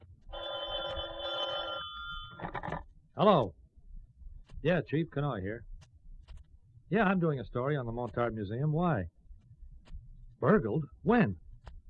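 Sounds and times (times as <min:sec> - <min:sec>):
telephone bell ringing: 0:00.3 - 0:02.8
speech: 0:03.2 - 0:03.6, 0:04.6 - 0:05.7, 0:06.9 - 0:09.2, 0:10.4 - 0:11.4.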